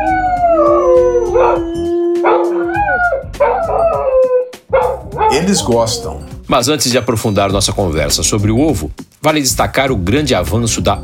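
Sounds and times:
dog howling: 0.0 - 5.7
dog barking and yipping: 1.3 - 6.0
speech: 5.4 - 11.0.

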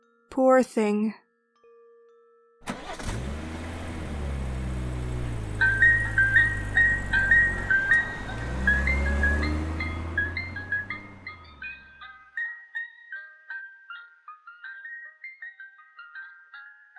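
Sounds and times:
speech: 0.4 - 1.2
ice cream truck engine starting and idling in an empty lot by an abandoned railroad track: 3.6 - 11.8
ice cream truck tinkling jingle melody: 4.2 - 16.9.

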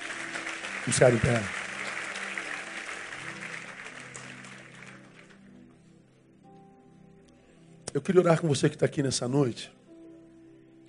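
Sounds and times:
audience applauding: 0.0 - 5.5
speech: 0.8 - 1.6, 8.0 - 9.8.

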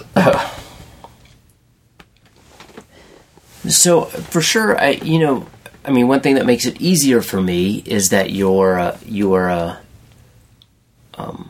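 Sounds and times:
person burping: 0.0 - 0.7
speech: 0.2 - 0.6, 3.7 - 9.8
faint rustles: 2.0 - 5.9.

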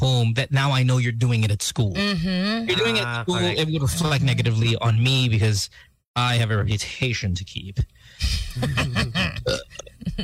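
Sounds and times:
speech: 0.1 - 10.2
long loud croaking burp: 9.4 - 9.8.

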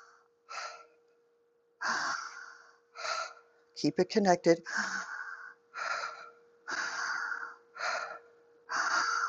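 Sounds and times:
deep guided belly breathing in and out during a breath-training session: 0.0 - 1.0, 1.8 - 3.6, 4.7 - 9.2
speech: 3.8 - 5.0.

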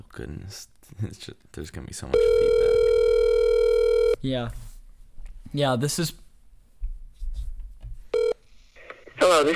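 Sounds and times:
speech: 0.1 - 2.8, 4.2 - 4.6, 5.5 - 6.2, 9.4 - 9.5
telephone dialing tone: 2.2 - 4.2, 8.2 - 8.4.

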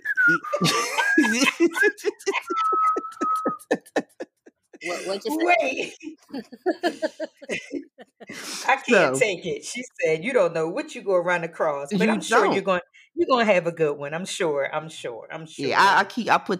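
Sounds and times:
person whistling a short wavering tune: 0.0 - 3.9
speech: 0.3 - 2.2, 5.2 - 7.2, 8.9 - 16.5
bursts of laughter and chuckling: 0.3 - 8.6.

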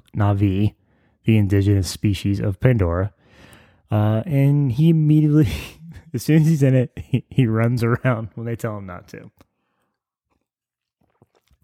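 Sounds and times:
speech: 0.2 - 9.5
person sipping and swallowing coffee: 9.4 - 11.6.

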